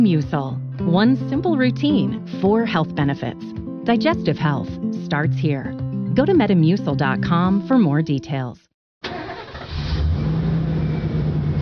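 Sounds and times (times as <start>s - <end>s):
speech: 0.0s - 8.6s
truck engine starting and rumbling: 9.0s - 11.6s.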